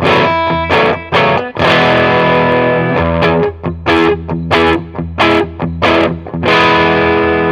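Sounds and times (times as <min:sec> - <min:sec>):
electric guitar strummed chords through an overdrive pedal at moderate gain: 0:00.0 - 0:07.5.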